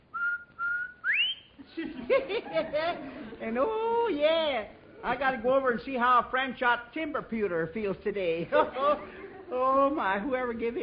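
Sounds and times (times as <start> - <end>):
person whistling a tune: 0.1 - 1.5
laughter: 1.6 - 3.4, 8.5 - 9.8
speech: 2.1 - 10.8.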